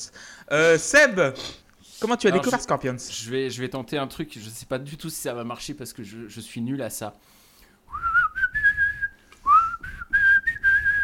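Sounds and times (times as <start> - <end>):
speech: 0.0 - 7.3
person whistling a lively TV game show theme tune: 7.9 - 11.0.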